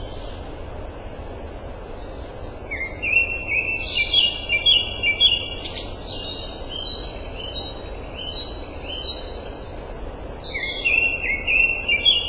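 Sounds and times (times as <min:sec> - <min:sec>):
constant low noise: 0:00.0 - 0:12.2
Grey shrike-thrush song of rich whistled notes: 0:02.0 - 0:09.7, 0:10.4 - 0:12.2.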